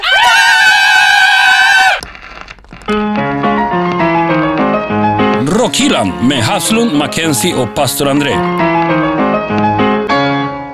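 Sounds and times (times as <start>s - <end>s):
power metal-style scream with vibrato: 0.0s - 2.0s
melodic music: 3.0s - 10.7s
speech: 5.7s - 8.7s.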